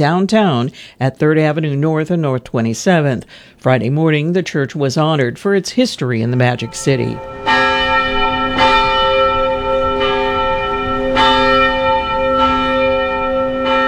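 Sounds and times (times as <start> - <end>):
speech: 0.0 - 7.5
large church bell tolling: 6.2 - 13.8.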